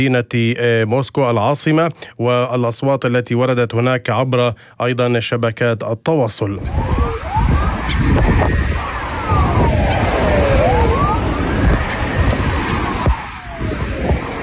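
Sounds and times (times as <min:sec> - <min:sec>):
speech: 0:00.0 - 0:08.8
ambulance sirens wailing on the outskirts of Moscow: 0:06.6 - 0:14.4
loud street noise and rumble on the outskirts of Moscow: 0:06.6 - 0:14.4.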